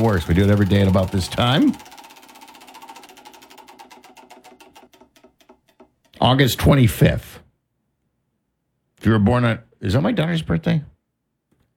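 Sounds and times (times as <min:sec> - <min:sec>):
speech: 0:00.0 - 0:01.9, 0:06.3 - 0:07.3, 0:09.0 - 0:10.9
prize wheel spinning and clicking for a Bundt cake birthday giveaway: 0:00.0 - 0:06.3.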